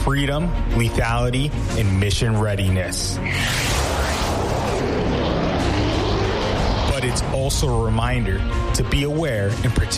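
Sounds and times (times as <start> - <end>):
speech: 0.1 - 3.8, 7.0 - 9.9
military jet flying overhead: 3.2 - 9.1.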